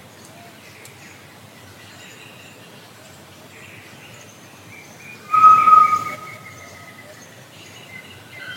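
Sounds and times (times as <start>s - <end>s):
tinamou whistle: 5.3s - 6.9s.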